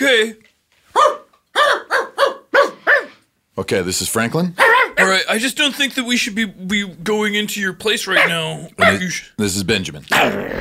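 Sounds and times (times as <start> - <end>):
speech: 0.0 - 1.2, 3.6 - 10.6
dogs barking: 0.9 - 3.2, 4.6 - 5.2, 8.1 - 9.2.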